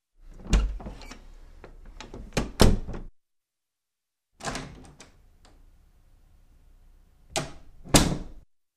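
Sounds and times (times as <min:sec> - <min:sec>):
wooden door opening and closing: 0:00.3 - 0:01.2, 0:01.8 - 0:03.1, 0:04.4 - 0:05.6, 0:07.3 - 0:08.4.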